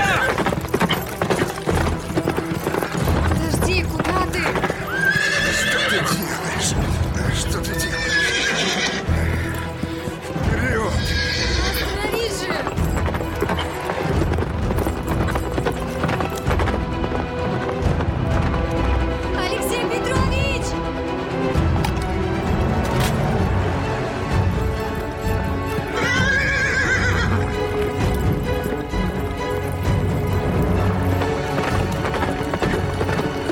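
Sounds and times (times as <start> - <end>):
horse neighing: 0.0 - 1.0, 4.6 - 6.8, 7.7 - 9.9, 10.6 - 12.6, 25.8 - 27.5
ridden horse galloping: 0.0 - 20.7, 21.5 - 33.4.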